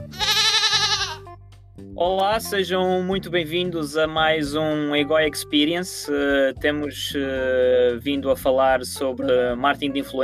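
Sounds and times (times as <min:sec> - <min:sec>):
goat bleating: 0:00.0 - 0:01.3
speech: 0:02.0 - 0:10.2.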